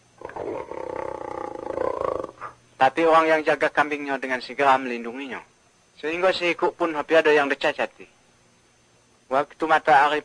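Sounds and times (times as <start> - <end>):
tiger roaring in a forest: 0.2 - 2.5
speech: 2.8 - 8.2, 9.3 - 10.2.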